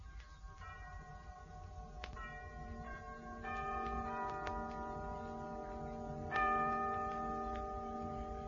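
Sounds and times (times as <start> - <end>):
clock chiming the hour with resonant bell strikes: 0.1 - 8.4.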